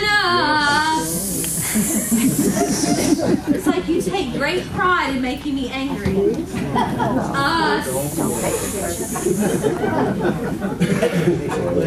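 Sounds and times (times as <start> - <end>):
voices chattering during a choir rehearsal: 0.0 - 11.8
person holding a hissing S sound during a choir rehearsal: 0.8 - 3.2, 7.9 - 9.6
people chuckling during a choir rehearsal: 1.3 - 4.2, 6.5 - 7.4, 8.3 - 11.8
speech: 1.8 - 11.8.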